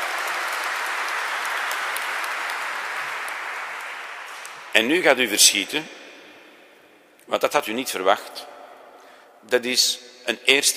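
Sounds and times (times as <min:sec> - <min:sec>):
audience applauding: 0:00.0 - 0:04.7
speech: 0:04.8 - 0:06.0, 0:07.3 - 0:08.6, 0:09.4 - 0:10.7.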